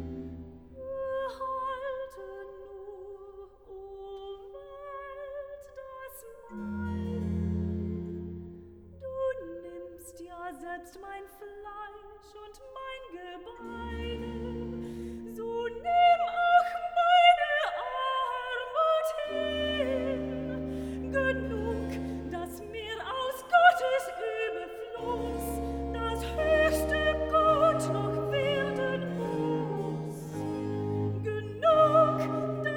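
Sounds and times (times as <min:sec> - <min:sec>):
soprano singing recitative: 0:00.8 - 0:07.5, 0:09.0 - 0:32.7.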